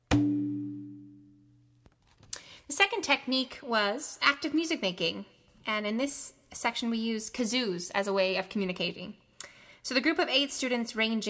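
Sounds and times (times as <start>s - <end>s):
strike on a medium-sized Remo shape drum: 0.1s - 1.3s
speech: 2.7s - 9.2s, 9.8s - 11.2s.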